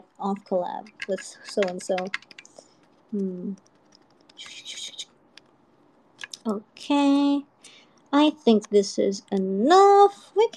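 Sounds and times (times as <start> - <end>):
speech: 0.2 - 2.4, 3.1 - 3.7, 4.4 - 5.1, 6.4 - 7.5, 8.1 - 10.5
computer keyboard keys clicking: 0.4 - 5.5.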